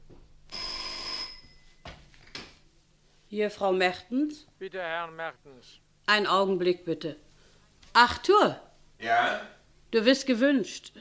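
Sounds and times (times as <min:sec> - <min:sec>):
telephone bell ringing: 0:00.5 - 0:01.9
speech: 0:03.3 - 0:07.3, 0:08.0 - 0:10.9.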